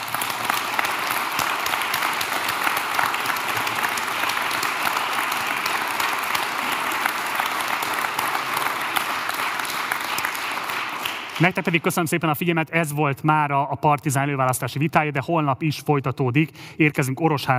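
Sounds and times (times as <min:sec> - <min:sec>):
sizable audience applauding after a pre-election debate: 0:00.0 - 0:12.2
speech: 0:11.4 - 0:17.5.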